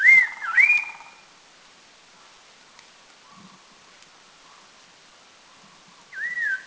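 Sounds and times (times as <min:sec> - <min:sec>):
red-faced liocichla whistled notes at Doi Lang in northern Thailand: 0:00.0 - 0:01.2, 0:06.2 - 0:06.6.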